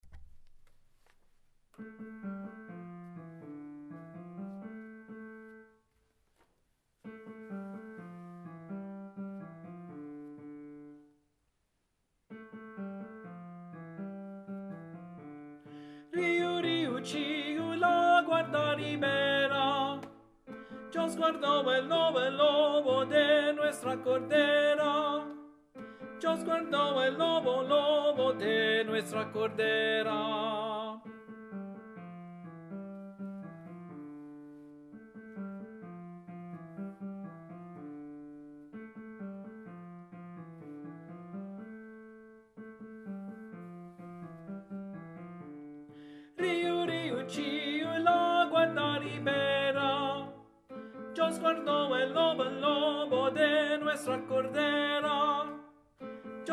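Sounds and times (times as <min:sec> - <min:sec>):
alto voice singing: 0:16.1 - 0:31.3, 0:46.4 - 0:56.5.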